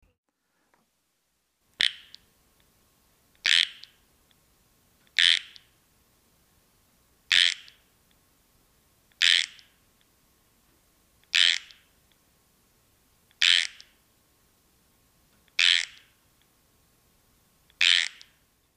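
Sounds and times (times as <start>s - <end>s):
Pacific tree frog calling: 1.8s - 2.2s, 3.4s - 4.0s, 5.2s - 5.7s, 7.3s - 7.8s, 9.2s - 9.7s, 11.3s - 11.8s, 13.4s - 13.9s, 15.6s - 16.1s, 17.8s - 18.3s.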